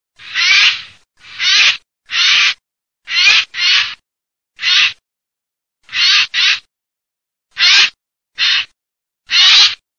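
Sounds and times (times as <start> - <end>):
jay calling: 0.2 - 4.0, 4.6 - 5.0, 5.8 - 6.7, 7.5 - 9.8.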